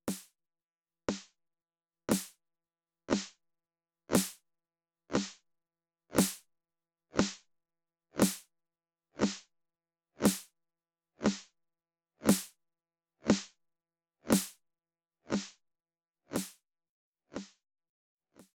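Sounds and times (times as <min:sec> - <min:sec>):
phasing snare drums: 0:00.0 - 0:00.3, 0:02.1 - 0:02.3, 0:03.1 - 0:03.3, 0:04.1 - 0:04.4, 0:05.1 - 0:05.4, 0:06.2 - 0:06.4, 0:07.2 - 0:07.4, 0:08.2 - 0:08.4, 0:09.2 - 0:09.4, 0:10.2 - 0:10.5, 0:11.2 - 0:11.5, 0:12.3 - 0:12.5, 0:13.3 - 0:13.5, 0:14.3 - 0:14.6, 0:15.3 - 0:15.5, 0:16.3 - 0:16.6.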